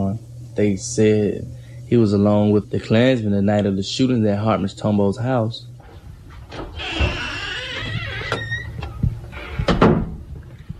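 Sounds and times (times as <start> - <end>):
speech: 0.6 - 5.7
door creaking open with hinge squeal: 6.5 - 10.3.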